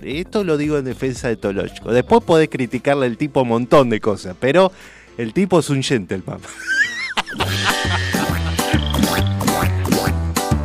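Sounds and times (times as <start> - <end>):
speech: 0.0 - 8.0
laughter: 6.5 - 10.1
frog croaking: 7.5 - 10.1.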